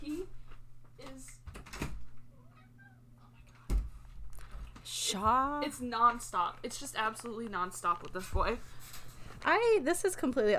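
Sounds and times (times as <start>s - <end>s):
cat meowing to be let in: 2.4s - 3.0s
speech: 5.1s - 8.8s, 9.4s - 10.5s.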